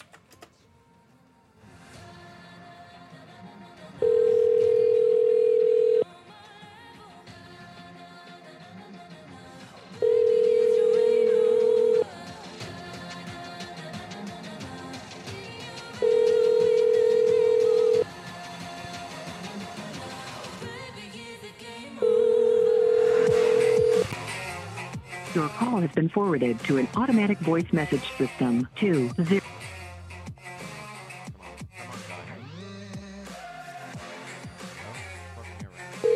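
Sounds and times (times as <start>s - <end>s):
telephone ringback tones while calling a cell phone number: 4.0s - 6.1s, 10.0s - 12.1s, 16.0s - 18.1s, 22.0s - 24.1s
speech: 26.0s - 29.4s.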